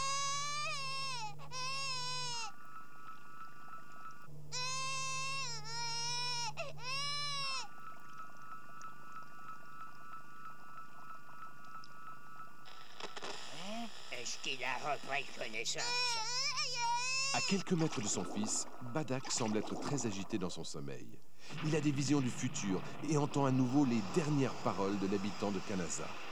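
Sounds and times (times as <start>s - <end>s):
baby waking and crying in a hospital nursery: 0.0s - 2.6s, 4.5s - 7.8s, 14.8s - 18.4s
speech: 14.3s - 16.4s, 17.3s - 26.3s.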